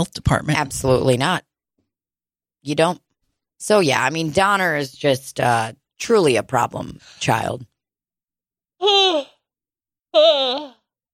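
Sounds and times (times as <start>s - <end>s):
speech: 0.0s - 1.5s, 2.6s - 3.0s, 3.6s - 7.7s, 8.8s - 9.3s, 10.1s - 10.8s
person yawning with a moaning voice: 10.2s - 10.8s.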